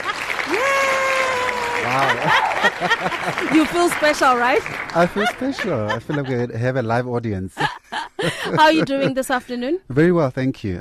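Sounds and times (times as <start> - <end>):
several hands clapping in a radio studio to welcome a guest: 0.0 - 5.9
laughter: 0.0 - 9.6
person letting out a long drawn-out cheer: 0.4 - 3.0
speech: 2.0 - 10.7.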